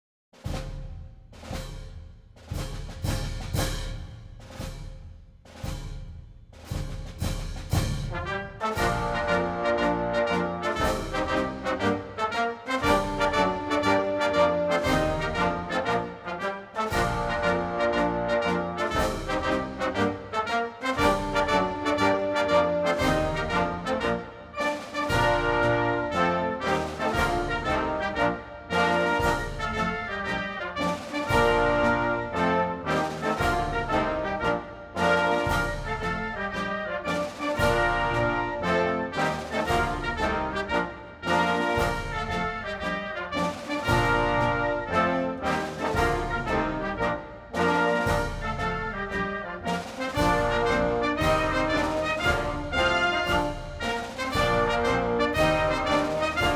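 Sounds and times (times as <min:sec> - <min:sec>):
national anthem music: 0:00.4 - 0:56.5.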